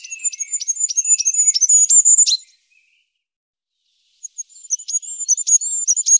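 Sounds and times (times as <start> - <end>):
goldcrest singing high-pitched phrases: 0.0 - 3.1, 3.8 - 6.1.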